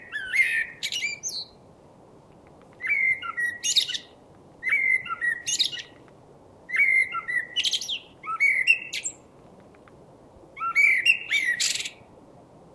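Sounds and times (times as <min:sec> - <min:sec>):
common blackbird (Turdus merula) singing: 0:00.0 - 0:01.6, 0:02.8 - 0:06.0, 0:06.7 - 0:09.2, 0:10.6 - 0:12.0.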